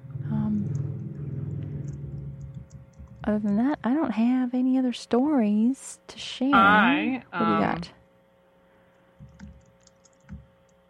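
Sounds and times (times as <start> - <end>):
low steady hum: 0.0 - 10.8
fingers typing on a computer keyboard: 0.6 - 4.0, 9.2 - 10.8
speech: 3.2 - 8.0.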